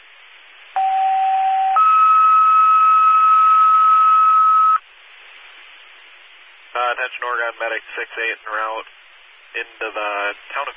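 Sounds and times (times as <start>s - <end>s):
faint band-limited radio hiss: 0.0s - 10.7s
two-tone dispatch radio alert: 0.8s - 4.8s
speech: 6.9s - 10.7s.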